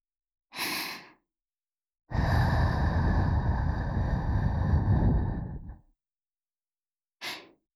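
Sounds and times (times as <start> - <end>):
gentle breathy blowing into the left ear for ASMR: 2.1 - 5.8.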